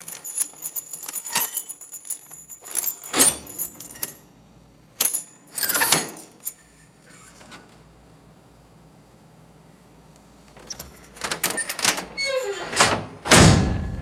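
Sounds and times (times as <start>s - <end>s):
heavy iron prison gate opening and shutting: 3.0s - 4.2s, 10.6s - 14.0s.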